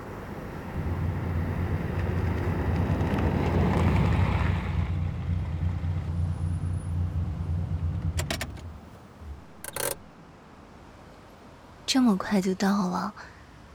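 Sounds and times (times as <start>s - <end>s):
car driving on a road: 0.4s - 10.1s
speech: 11.9s - 13.4s.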